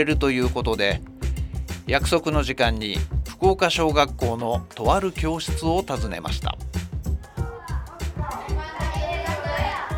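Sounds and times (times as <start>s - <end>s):
speech: 0.0s - 1.1s, 1.9s - 6.8s
children chattering freely in a classroom: 7.2s - 9.9s.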